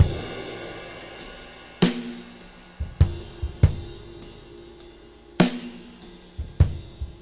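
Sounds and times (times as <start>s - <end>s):
music loop in six eight time: 0.0s - 7.2s.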